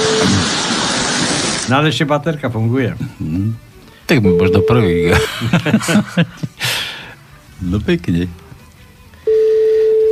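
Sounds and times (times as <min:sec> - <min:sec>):
single-pitched telephone call tone: 0:00.0 - 0:00.4, 0:04.2 - 0:05.2, 0:09.2 - 0:10.0
speech: 0:01.7 - 0:06.6, 0:07.6 - 0:08.4
laughter: 0:05.1 - 0:06.8.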